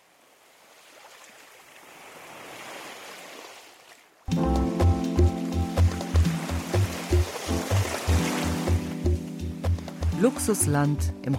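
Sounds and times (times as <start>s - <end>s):
Baltic Sea waves lapping on shore: 0.0s - 4.2s, 5.4s - 11.3s
rhythmic music with a steady pulsing bass: 4.3s - 11.3s
speech: 10.2s - 11.3s.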